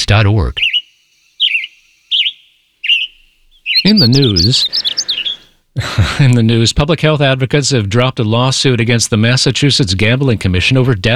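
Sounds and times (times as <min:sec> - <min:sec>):
western tanager singing in the Eel River Preserve: 0:00.0 - 0:05.6
speech: 0:00.1 - 0:00.7, 0:03.8 - 0:05.0, 0:05.8 - 0:11.1
laughter: 0:04.0 - 0:07.5.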